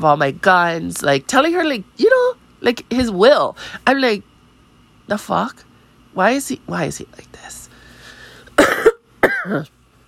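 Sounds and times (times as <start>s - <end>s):
speech: 0.0s - 4.3s, 5.1s - 7.6s, 9.4s - 9.8s
person coughing harshly: 8.6s - 9.7s.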